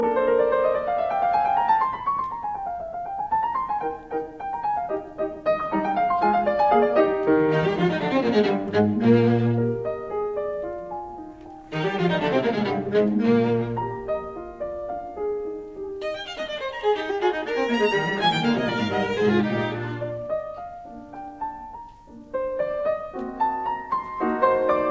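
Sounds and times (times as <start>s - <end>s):
piano quartet playing in E flat major: 0.0s - 24.9s.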